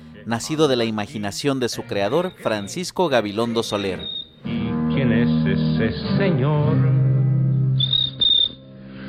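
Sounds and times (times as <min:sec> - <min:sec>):
speech: 0:00.3 - 0:07.0
cricket chirping in high shrill trills: 0:07.8 - 0:08.6.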